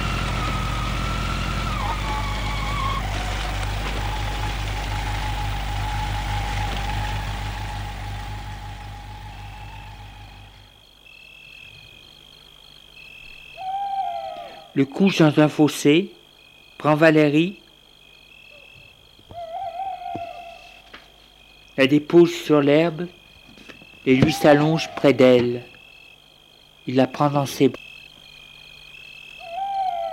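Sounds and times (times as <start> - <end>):
scooter engine slowing to idle at the roadside and stopping: 0.0 - 10.7
speech: 14.8 - 16.2, 16.8 - 17.6, 21.8 - 23.2, 24.0 - 25.7, 26.9 - 27.9.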